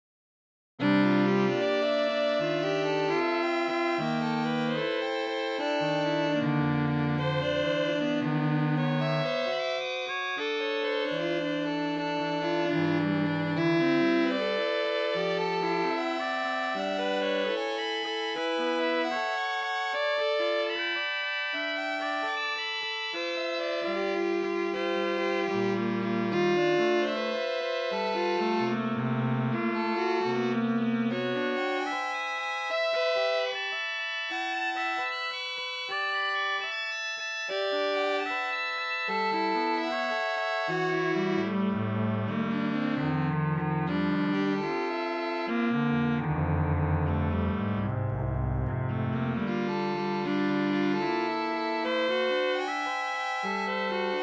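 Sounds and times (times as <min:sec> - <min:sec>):
quintet playing: 0:00.8 - 0:54.2.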